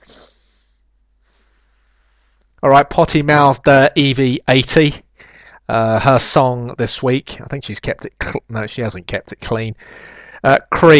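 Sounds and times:
nasal sniffs through an inhaler: 0.0s - 1.6s
speech: 2.6s - 5.0s, 5.7s - 10.9s.

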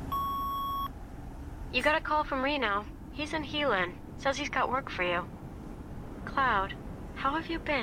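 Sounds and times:
voicemail message beep: 0.1s - 0.9s
speech: 1.7s - 5.4s, 6.3s - 7.8s.

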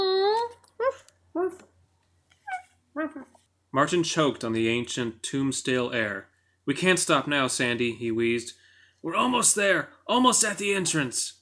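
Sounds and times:
small puppy yelping: 2.4s - 3.4s
speech: 3.7s - 11.3s.

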